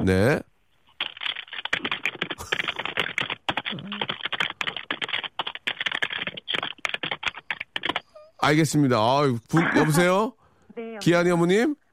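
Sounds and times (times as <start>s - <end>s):
speech: 0.0s - 0.5s, 8.4s - 11.8s
angry fast typing on computer keyboard: 0.9s - 8.6s
laughter: 9.5s - 10.3s.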